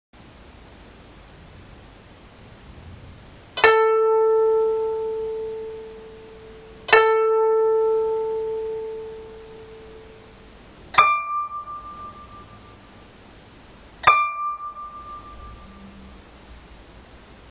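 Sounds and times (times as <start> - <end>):
koto being tuned: 3.5 - 13.2, 14.0 - 16.6.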